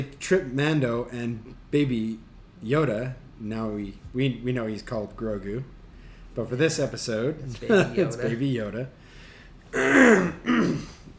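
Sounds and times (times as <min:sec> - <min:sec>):
speech: 0:00.0 - 0:05.8, 0:06.4 - 0:09.0, 0:09.7 - 0:10.4
person clearing throat: 0:09.7 - 0:11.1.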